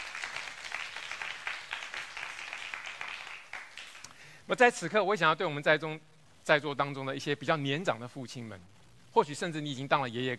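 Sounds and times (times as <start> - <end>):
church service audience applauding: 0.0 - 4.1
speech: 4.5 - 10.3.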